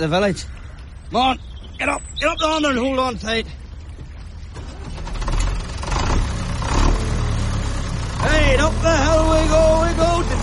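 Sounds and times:
speech: 0:00.0 - 0:03.6, 0:08.2 - 0:10.3
rattling and clatter: 0:03.8 - 0:08.3
heavy tractor engine revving: 0:04.4 - 0:10.4.

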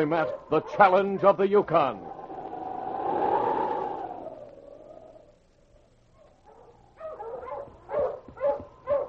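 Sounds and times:
speech: 0:00.0 - 0:02.2
Husky sled dogs barking on a frozen creek: 0:00.1 - 0:01.5, 0:06.2 - 0:09.0
wavering whine-like tone: 0:01.6 - 0:05.4.

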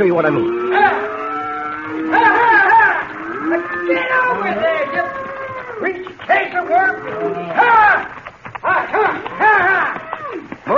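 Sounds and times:
speech: 0:00.0 - 0:01.1, 0:03.5 - 0:10.7
cattle lowing while being herded: 0:00.2 - 0:07.7.

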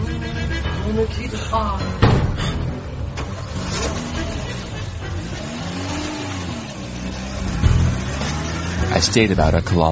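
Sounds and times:
loaded blue car driving away: 0:00.7 - 0:09.9
speech: 0:00.9 - 0:02.2, 0:09.0 - 0:09.9
car engine starting and revving: 0:02.5 - 0:09.9.

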